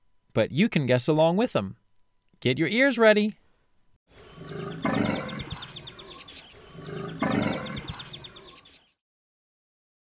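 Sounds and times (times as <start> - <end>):
speech: 0.4 - 1.8, 2.4 - 3.4
deep growling dinosaur-like roar: 4.2 - 8.7
shrill chirping bird cries: 4.2 - 9.0.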